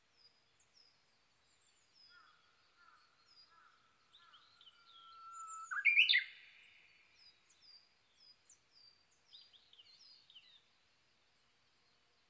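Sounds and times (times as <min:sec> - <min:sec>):
Japanese bush warbler singing: 0:00.1 - 0:10.7.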